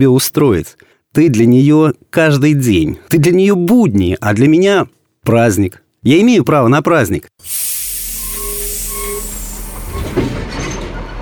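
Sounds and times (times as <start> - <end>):
speech: 0.0 - 7.8
train rumbling and hissing: 7.4 - 11.2
faint tonal squeals of a train: 7.5 - 10.4.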